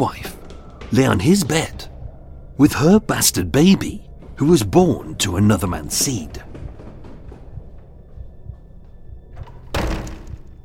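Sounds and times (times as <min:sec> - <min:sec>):
speech: 0:00.0 - 0:00.3, 0:00.9 - 0:01.9, 0:02.6 - 0:06.6
wooden door bursting open with a bang: 0:09.4 - 0:10.6.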